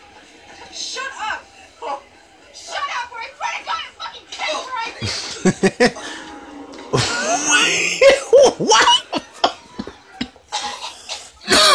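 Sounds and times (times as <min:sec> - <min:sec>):
person coughing: 0:05.0 - 0:06.3, 0:07.0 - 0:11.7
faint laughter-like breaths: 0:05.0 - 0:11.7
speech: 0:05.4 - 0:05.9.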